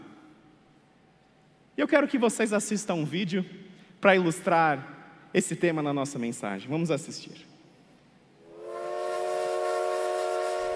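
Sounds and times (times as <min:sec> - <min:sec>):
speech: 0:01.8 - 0:07.5
steam train whistle blowing before departure: 0:08.4 - 0:10.7.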